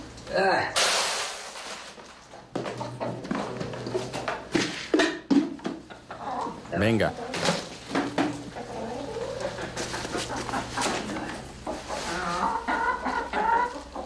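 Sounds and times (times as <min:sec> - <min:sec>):
speech: 0:00.3 - 0:00.8, 0:06.8 - 0:07.2
hens clucking and squawking: 0:02.5 - 0:04.5, 0:05.6 - 0:14.0.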